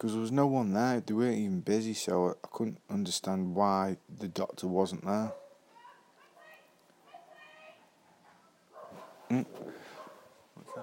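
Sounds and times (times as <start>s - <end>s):
speech: 0.0s - 5.4s, 9.3s - 9.9s
dog barking and yelping: 5.2s - 10.8s.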